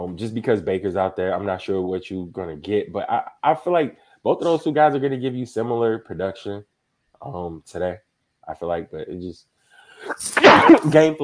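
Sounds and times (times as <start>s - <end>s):
speech: 0.0s - 11.2s
loud sneeze with a sharp breathy burst: 10.0s - 11.1s.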